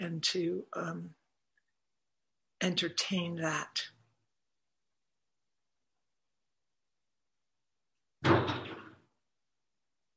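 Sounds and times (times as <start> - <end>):
speech: 0.0 - 1.2, 2.6 - 4.0
door banging shut in the wind: 8.2 - 9.1.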